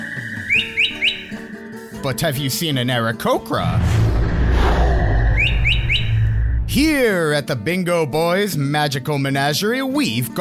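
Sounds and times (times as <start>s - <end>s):
bird chirping and whistling: 0.0s - 2.0s, 5.1s - 6.7s
speech: 2.0s - 4.0s, 6.8s - 10.3s.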